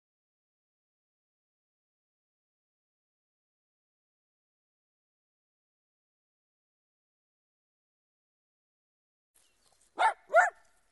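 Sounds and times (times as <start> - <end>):
dog barking: 10.0 - 10.7.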